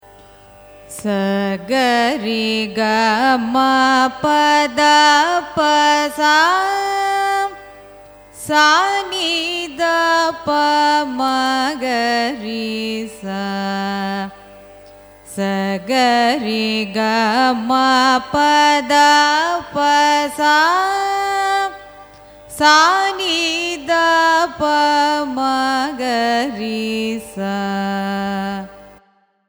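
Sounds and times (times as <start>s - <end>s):
Carnatic raga ananda bhairavi ascending and descending scale: 0.0s - 29.4s.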